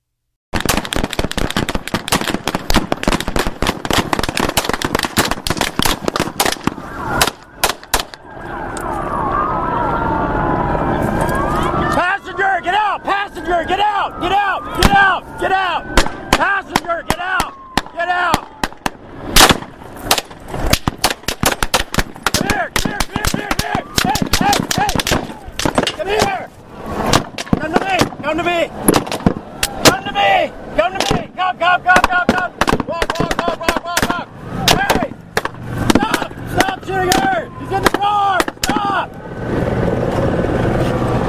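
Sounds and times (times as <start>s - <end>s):
rapid gunfire during a police shootout: 0.6s - 8.2s, 17.1s - 26.4s, 31.9s - 37.3s
wailing siren-like tone: 6.4s - 19.3s, 22.4s - 27.4s, 28.6s - 32.5s, 33.2s - 41.2s
frantic shouting voices during a police shootout: 11.5s - 18.6s, 22.2s - 35.2s, 35.9s - 39.1s.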